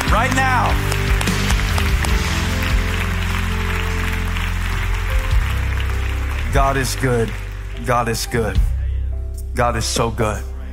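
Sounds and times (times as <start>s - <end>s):
large audience clapping: 0.0s - 8.4s
sustained low instrumental music: 0.0s - 10.7s
speech: 6.5s - 8.7s, 9.6s - 10.5s.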